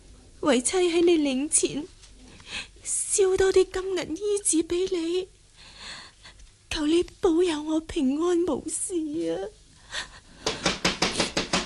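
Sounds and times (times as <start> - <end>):
speech: 0.4 - 2.0, 3.2 - 5.4, 6.8 - 10.1
urgent pounding on a door: 10.4 - 11.6.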